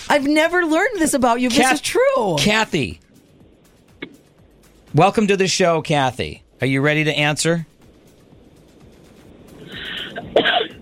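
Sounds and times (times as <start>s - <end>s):
speech: 0.1s - 3.0s, 4.9s - 7.7s, 10.3s - 10.6s
single sneeze close to the microphone: 10.0s - 10.8s.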